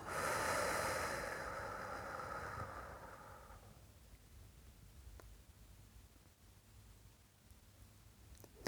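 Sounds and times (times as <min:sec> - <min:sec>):
person inhaling through nose and exhaling through mouth: 0:00.0 - 0:03.8
quiet room hiss: 0:00.0 - 0:08.6.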